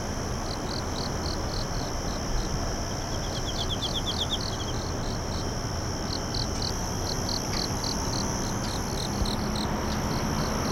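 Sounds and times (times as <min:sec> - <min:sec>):
continuous high hum: 0:00.0 - 0:10.6
insect chirping: 0:00.0 - 0:10.6.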